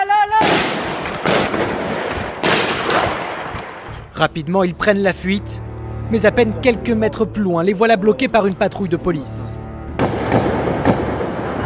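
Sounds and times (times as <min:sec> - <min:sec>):
gunfire exchanged in a street: 0:00.4 - 0:03.9, 0:10.0 - 0:11.6
speech: 0:04.2 - 0:09.6, 0:10.3 - 0:10.5.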